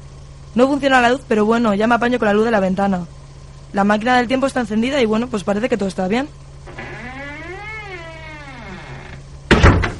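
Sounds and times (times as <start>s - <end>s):
speech: 0.6s - 6.8s
quiet low hum: 6.4s - 9.5s
door shutting with a heavy thud: 6.7s - 9.9s.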